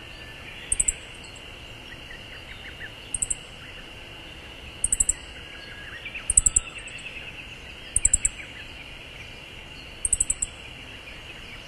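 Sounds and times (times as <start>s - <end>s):
insects buzzing: 0.0s - 11.6s
Siberian bunting ticking calls: 0.7s - 1.4s, 2.7s - 3.6s, 4.8s - 5.4s, 6.2s - 7.1s, 7.9s - 8.6s, 10.0s - 10.6s.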